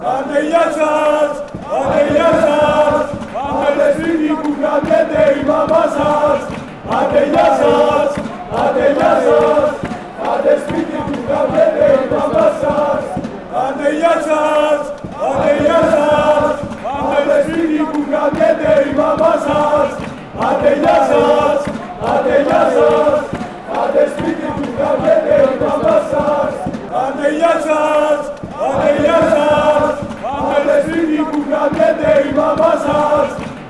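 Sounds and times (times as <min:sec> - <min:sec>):
football chant: 0:00.0 - 0:33.6.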